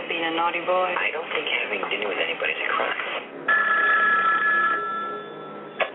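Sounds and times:
speech: 0.2s - 3.2s
telephone bell ringing: 3.5s - 5.8s.

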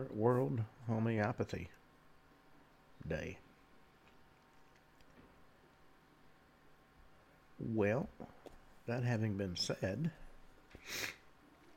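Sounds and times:
speech: 0.0s - 1.8s, 3.0s - 3.5s, 7.6s - 10.2s, 10.8s - 11.2s
nasal sniffle from someone with the sniffles: 10.8s - 11.2s.

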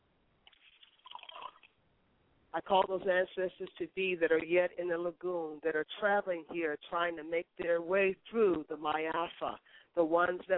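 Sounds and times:
liquid poured out as a libation, splashing and dripping onto a surface: 0.4s - 1.8s
speech: 2.5s - 10.5s.

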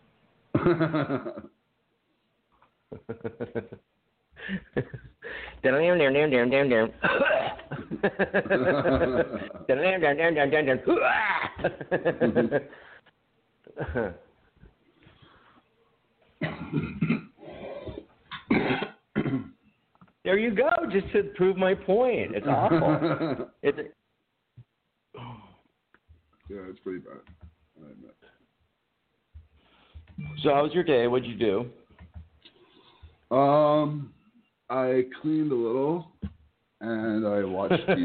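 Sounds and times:
speech: 0.6s - 1.6s, 2.9s - 12.9s, 13.7s - 14.2s, 20.2s - 24.0s, 26.5s - 28.2s, 30.2s - 31.8s, 33.3s - 36.1s, 36.8s - 38.0s
two people coughing: 7.0s - 7.8s, 16.4s - 17.4s, 18.3s - 19.6s
laughter: 7.1s - 9.7s, 10.9s - 12.8s, 22.4s - 23.6s, 37.6s - 38.0s
people clearing their throats: 16.4s - 19.6s.

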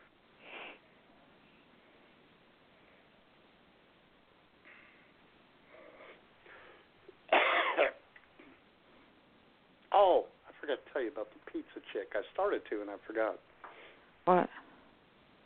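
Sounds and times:
woman coughing over a phone line: 7.3s - 8.0s
speech: 10.0s - 13.5s, 14.3s - 14.6s.

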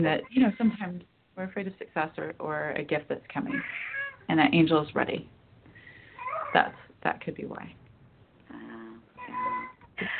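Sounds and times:
speech: 0.0s - 5.4s, 6.5s - 7.8s, 10.0s - 10.1s
cat meowing behind a door: 3.5s - 4.2s, 9.2s - 10.1s.

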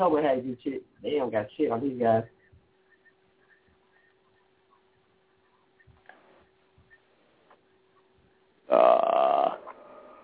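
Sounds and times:
speech: 0.0s - 2.4s
loud low throaty burp: 8.7s - 9.8s.

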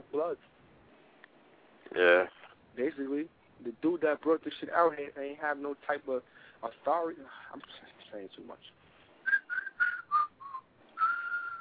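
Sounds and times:
speech: 0.2s - 0.6s, 1.9s - 8.8s
person whistling: 9.2s - 11.5s.

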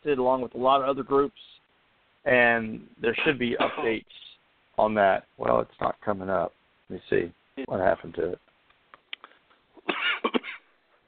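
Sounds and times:
speech: 0.0s - 1.6s, 2.2s - 8.5s
person coughing: 3.2s - 4.0s, 9.8s - 10.7s.

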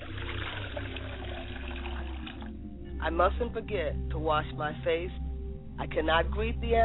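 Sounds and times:
water poured out as a libation offering: 0.0s - 3.5s
speech: 3.0s - 5.2s, 5.8s - 6.8s.

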